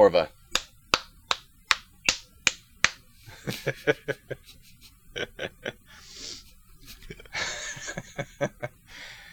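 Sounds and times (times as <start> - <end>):
speech: 0.0 - 0.4, 3.5 - 5.8, 8.2 - 8.7
hands clapping rhythmically imitating slapping: 0.5 - 3.0
soft breathy laughter and snickering: 3.2 - 9.3.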